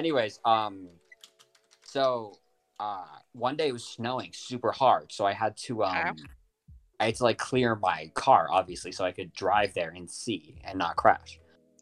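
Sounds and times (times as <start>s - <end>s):
speech: 0.0s - 1.0s, 1.9s - 6.4s, 7.0s - 11.8s
typing on a computer keyboard: 1.0s - 2.1s.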